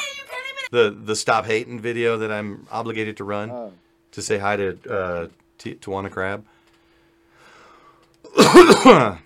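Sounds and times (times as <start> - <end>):
speech: 0.7 - 6.6, 8.5 - 9.2
single harsh raspy cough: 8.3 - 9.2.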